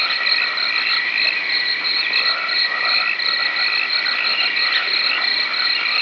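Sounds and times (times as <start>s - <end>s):
crickets in swamps: 0.0s - 6.0s
frogs in swamps: 0.0s - 6.0s.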